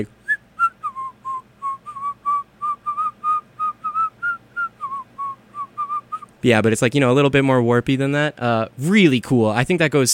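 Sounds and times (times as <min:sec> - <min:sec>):
person whistling imitating a rising and falling whistle from a music track: 0:00.2 - 0:06.3
speech: 0:06.4 - 0:10.1.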